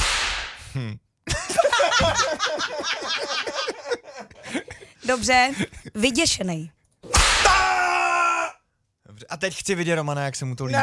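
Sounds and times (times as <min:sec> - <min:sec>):
sharp hissing whip crack with descending whistle: 0:00.0 - 0:00.6, 0:07.1 - 0:07.6
speech: 0:00.7 - 0:07.2, 0:09.2 - 0:10.8
laughter: 0:01.3 - 0:06.1.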